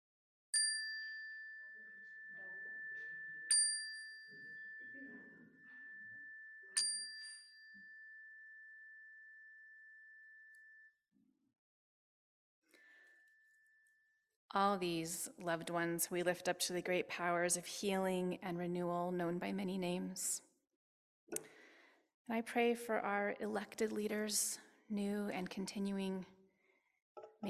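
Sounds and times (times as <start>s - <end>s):
bell-like chime struck during a prayer: 0.6s - 10.6s
speech: 14.5s - 20.5s, 22.3s - 26.4s.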